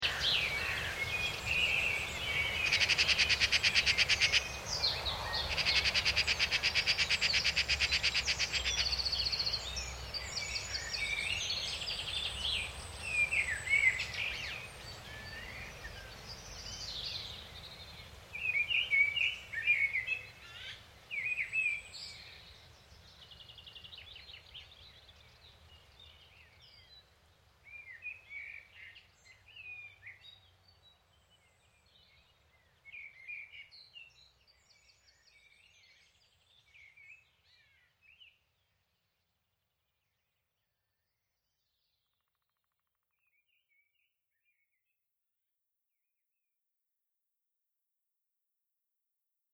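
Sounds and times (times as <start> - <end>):
park birds: 0.0 - 40.2
distant traffic: 0.5 - 10.6.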